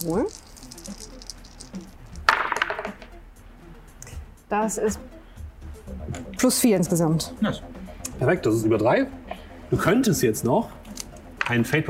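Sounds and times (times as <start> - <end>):
speech: 0.0 - 0.4, 4.5 - 5.2, 6.4 - 10.8, 11.5 - 11.8
dice rolled onto a hard surface: 0.0 - 3.1.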